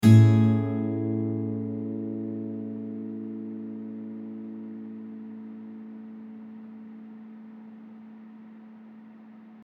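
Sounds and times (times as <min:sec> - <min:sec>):
mellow acoustic guitar: 0:00.0 - 0:07.8.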